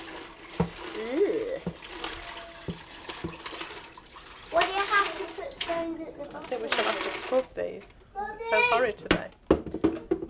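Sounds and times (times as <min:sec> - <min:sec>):
water poured from a jug into a container: 0:00.0 - 0:07.6
speech: 0:08.8 - 0:09.4.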